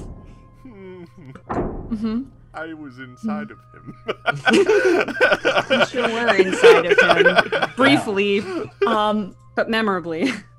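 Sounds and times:
speech: 0.6s - 10.5s
dull thump of something running into a door: 1.5s - 1.9s
laughter: 3.3s - 9.2s.

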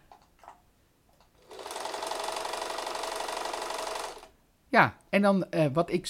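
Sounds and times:
sewing machine whirring while winding a yarn skein: 1.4s - 4.4s
speech: 4.7s - 6.0s.

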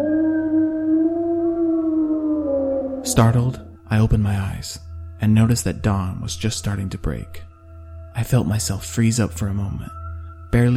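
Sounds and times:
sustained animal howl: 0.0s - 3.8s
speech: 3.0s - 7.5s, 8.2s - 10.7s.

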